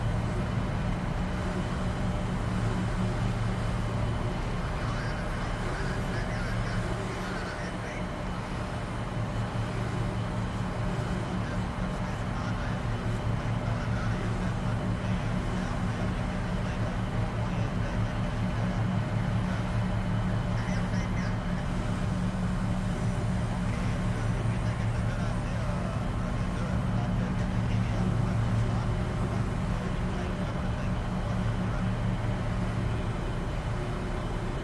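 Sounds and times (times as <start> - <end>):
ferry engine drone inside a cabin: 0.0 - 34.6.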